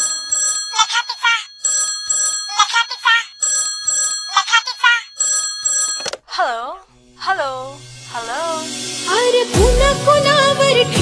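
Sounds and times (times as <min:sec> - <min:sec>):
telephone ring tone: 0:00.0 - 0:06.2
Marathi song with singing voices: 0:08.1 - 0:11.0.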